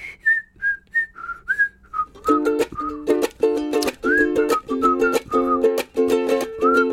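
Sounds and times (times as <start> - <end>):
bright whistled melody of short sliding notes: 0.0 - 6.9
rhythmic strummed ukulele chords: 2.1 - 6.9.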